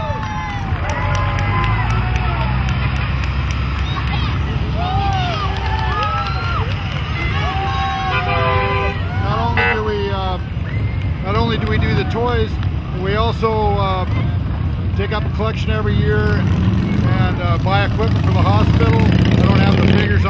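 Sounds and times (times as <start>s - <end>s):
lively crowd cheering: 0.0s - 13.1s
large vehicle rumbling past: 0.0s - 20.2s
many voices chattering and shouting: 0.0s - 20.2s
short horn toots: 7.8s - 10.1s
speech: 15.4s - 20.2s.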